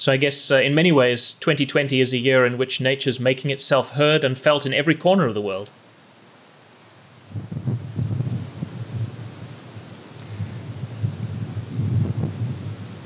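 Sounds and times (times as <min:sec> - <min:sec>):
speech: 0:00.0 - 0:05.8
cicadas droning at night: 0:00.0 - 0:13.0
strong southeast monsoon wind gusting at night: 0:07.2 - 0:13.0.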